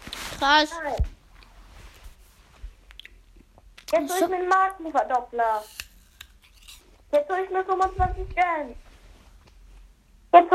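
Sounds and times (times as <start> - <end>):
speech: 0.4 - 1.2, 3.9 - 5.8, 7.1 - 8.8, 10.3 - 10.5
person chewing an apple: 2.8 - 4.0, 5.6 - 6.9.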